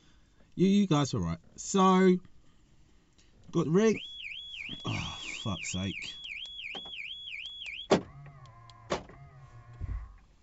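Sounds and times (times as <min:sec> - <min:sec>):
speech: 0:00.6 - 0:02.3, 0:03.5 - 0:04.1, 0:04.8 - 0:06.2
car electronic warning tone warbling: 0:03.8 - 0:10.2
sharp clicks inside a car: 0:06.2 - 0:09.1.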